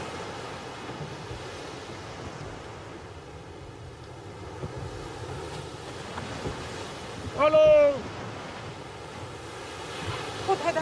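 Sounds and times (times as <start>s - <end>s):
sea waves washing onto the shore: 0.0s - 10.8s.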